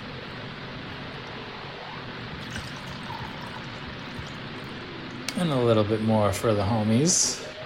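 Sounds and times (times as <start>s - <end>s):
Italian-style wine from Germany pouring into a glass: 2.4s - 4.7s
speech: 5.4s - 7.5s.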